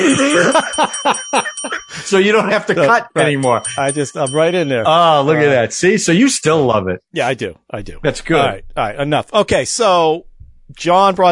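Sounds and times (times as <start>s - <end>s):
person laughing in quick breathy bursts: 0.0s - 3.4s
bell ringing with a thin lingering metallic tone: 0.0s - 5.7s
speech: 0.1s - 11.3s.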